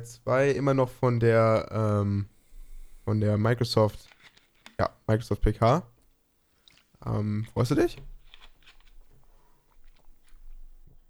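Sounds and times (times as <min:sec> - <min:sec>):
speech: 0:00.0 - 0:02.3, 0:03.1 - 0:04.2, 0:04.8 - 0:05.9, 0:07.0 - 0:08.1
person sipping and swallowing water: 0:06.6 - 0:07.1, 0:09.2 - 0:11.0.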